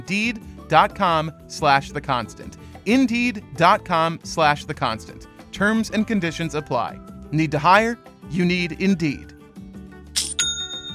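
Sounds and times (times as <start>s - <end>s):
speech: 0.0s - 9.3s
online store sale notification chime: 10.2s - 10.9s.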